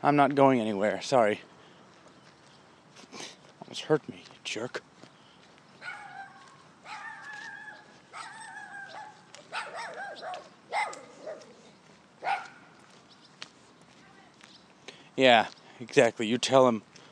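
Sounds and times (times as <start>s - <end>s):
speech: 0.0s - 1.5s, 3.1s - 4.9s, 15.2s - 16.9s
dog barking: 5.8s - 11.6s, 12.2s - 12.7s.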